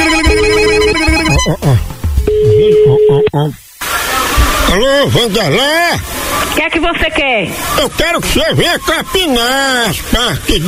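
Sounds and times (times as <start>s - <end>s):
telephone ringing on a call: 0.0s - 1.5s, 2.3s - 3.3s
speech: 1.5s - 1.9s, 2.6s - 3.6s, 4.8s - 10.6s
people talking and exclaiming: 2.6s - 10.6s.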